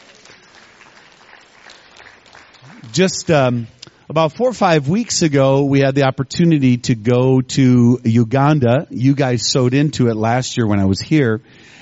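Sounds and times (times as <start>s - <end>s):
church congregation clapping hands: 0.0s - 3.8s
speech: 2.6s - 11.8s.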